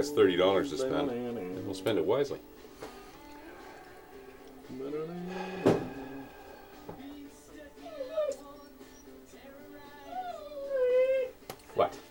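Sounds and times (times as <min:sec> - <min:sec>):
speech: 0:00.0 - 0:02.9, 0:04.7 - 0:05.7, 0:11.8 - 0:12.0
dog whining: 0:03.2 - 0:11.4.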